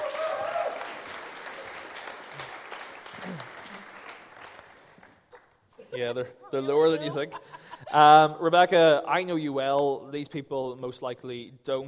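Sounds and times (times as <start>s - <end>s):
audience applause welcoming a speaker: 0.0s - 5.4s
laughter: 5.3s - 8.2s
speech: 6.0s - 11.8s.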